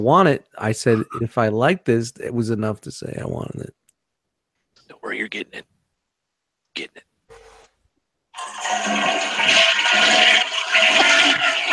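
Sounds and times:
speech: 0.0s - 3.8s, 4.9s - 5.7s, 6.8s - 7.1s
toilet flushing: 8.4s - 11.7s.

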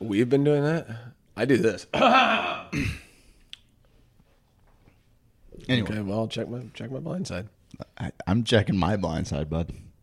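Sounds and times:
speech: 0.0s - 3.0s, 5.6s - 9.9s
person clearing throat into the microphone: 2.0s - 3.2s.

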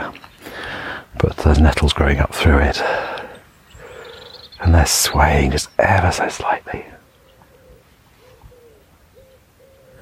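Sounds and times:
quiet outdoor ambience: 0.0s - 10.0s
speech: 1.2s - 3.2s, 4.6s - 7.0s
wood pigeon or collared dove cooing softly at the edge of the woods: 7.0s - 10.0s.

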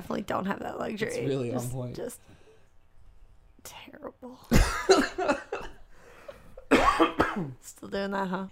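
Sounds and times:
speech: 0.1s - 2.4s, 3.6s - 5.6s, 7.0s - 8.5s
harsh coughs: 4.5s - 5.7s, 6.6s - 7.6s.

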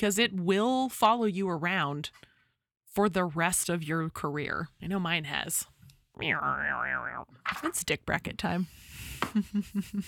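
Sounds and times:
speech: 0.0s - 2.3s, 2.9s - 10.0s
comedic droopy boing sound effect: 6.2s - 7.3s.

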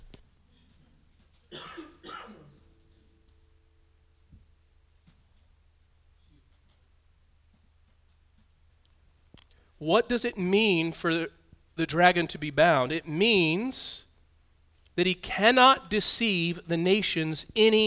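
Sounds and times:
low steady hum: 0.0s - 17.8s
harsh coughs: 1.5s - 2.7s
speech: 9.8s - 14.0s, 15.0s - 17.8s.

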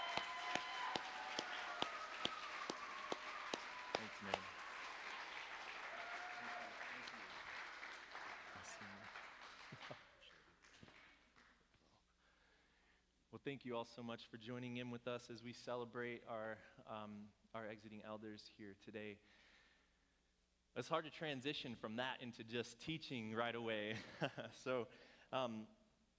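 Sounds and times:
crowd applauding: 0.0s - 11.6s
speech: 4.2s - 4.5s, 13.4s - 19.4s, 20.8s - 25.8s.

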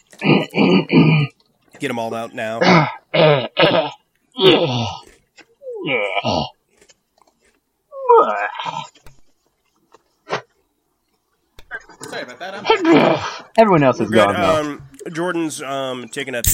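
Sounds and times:
harsh coughing: 0.2s - 1.4s, 2.6s - 4.7s, 12.5s - 13.4s
person clearing throat: 0.2s - 1.4s, 2.6s - 5.0s
speech: 0.2s - 5.0s, 5.8s - 6.5s, 12.1s - 16.5s
laughter: 11.8s - 13.4s.

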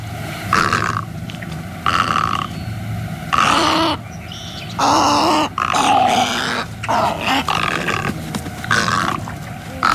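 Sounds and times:
snowy egret harsh croaks and gargling squawks: 0.5s - 1.1s, 1.8s - 2.6s, 3.3s - 9.9s.

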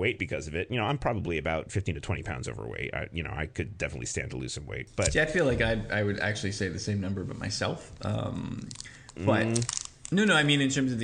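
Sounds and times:
speech: 0.0s - 11.0s
mint candy wrapper crinkling and clicking while unwrapped: 8.5s - 10.4s.

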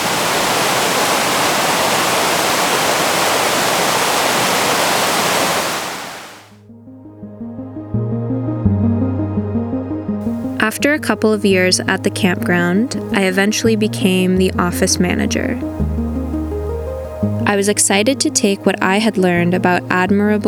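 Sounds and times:
water waves rushing: 0.0s - 6.6s
gentle melodic music: 6.6s - 20.4s
speech: 10.8s - 15.9s, 17.5s - 20.4s.

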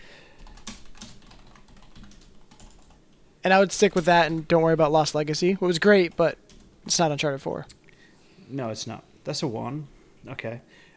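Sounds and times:
typing on a computer keyboard: 0.0s - 8.0s
speech: 3.4s - 7.8s, 8.5s - 10.9s.

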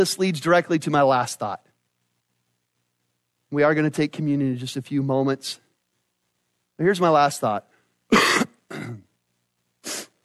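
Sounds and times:
speech: 0.0s - 1.7s, 3.5s - 5.6s, 6.8s - 9.0s
person coughing into a microphone during a church sermon: 8.1s - 9.1s.

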